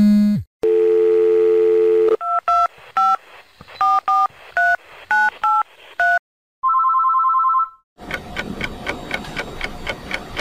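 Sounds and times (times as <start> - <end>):
phone: 0.1 - 8.2.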